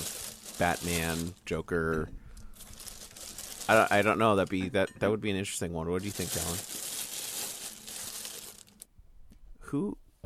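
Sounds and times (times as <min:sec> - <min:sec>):
paper shuffling and crinkling: 0:00.0 - 0:04.7, 0:06.0 - 0:08.8
speech: 0:00.6 - 0:02.2, 0:03.7 - 0:06.8, 0:09.7 - 0:10.2.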